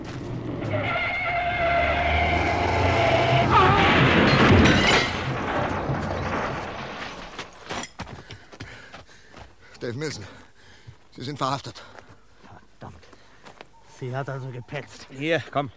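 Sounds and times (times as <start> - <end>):
speeding car skidding: 0.4 - 6.8
car crashing into another car: 0.7 - 7.7
speech: 11.2 - 12.0, 14.0 - 15.7.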